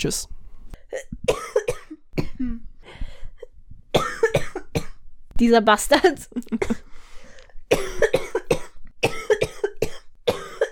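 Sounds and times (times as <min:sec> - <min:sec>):
speech: 0:00.0 - 0:01.6, 0:05.4 - 0:06.8
harsh wet coughing: 0:00.9 - 0:02.6, 0:04.0 - 0:05.0, 0:06.5 - 0:06.9, 0:07.7 - 0:10.6.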